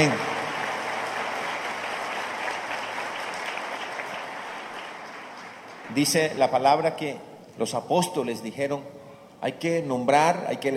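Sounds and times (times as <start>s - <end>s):
speech: 0.0s - 0.3s, 5.9s - 10.7s
audience applauding: 0.0s - 6.2s.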